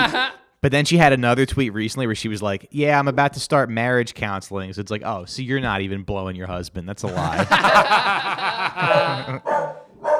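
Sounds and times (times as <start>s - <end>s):
laughter: 0.0s - 0.4s, 7.0s - 9.6s
speech: 0.0s - 9.8s
dog barking: 8.8s - 10.1s.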